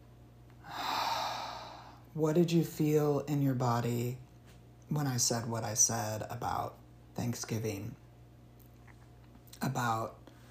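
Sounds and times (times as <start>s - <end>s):
deep breath in through nose and out through mouth during guided relaxation: 0.6s - 2.1s
speech: 2.2s - 4.2s, 4.9s - 8.0s, 9.6s - 10.2s.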